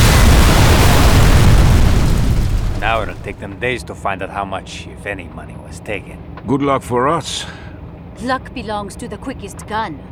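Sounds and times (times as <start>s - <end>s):
thermite grenades exploding at the end of a bridge: 0.0s - 3.6s
speech: 2.9s - 7.6s, 8.2s - 10.1s.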